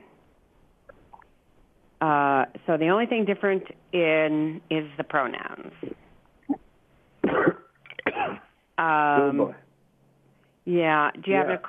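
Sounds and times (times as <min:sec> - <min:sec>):
speech: 0:02.0 - 0:05.9, 0:08.8 - 0:09.6, 0:10.7 - 0:11.6
dry coughing: 0:07.2 - 0:08.5.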